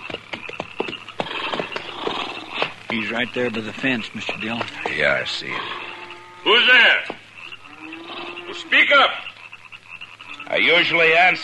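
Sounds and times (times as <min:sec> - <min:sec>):
hoofbeats of horses being pulled up on the prairie: 0:00.0 - 0:08.6
speech: 0:02.9 - 0:05.8, 0:06.4 - 0:07.2, 0:08.6 - 0:09.2, 0:10.5 - 0:11.4.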